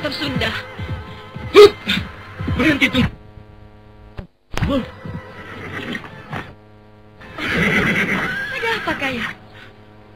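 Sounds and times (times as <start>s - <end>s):
speech: 0.0s - 2.0s, 2.6s - 3.2s, 4.7s - 5.0s, 8.9s - 9.4s
horse neighing: 5.2s - 6.5s, 7.2s - 9.0s.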